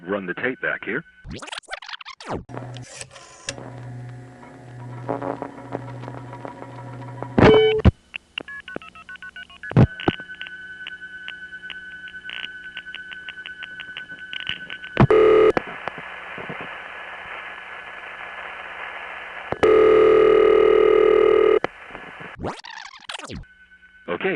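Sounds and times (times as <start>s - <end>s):
speech: 0.1s - 4.2s, 5.1s - 6.1s
loud telephone line tone: 7.4s - 7.9s, 8.5s - 15.6s, 19.6s - 21.7s.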